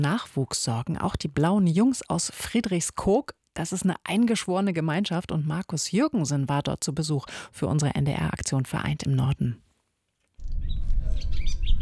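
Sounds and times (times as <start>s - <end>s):
speech: 0.0s - 9.6s
birds singing outdoors beside the North Sea dike: 10.5s - 11.7s.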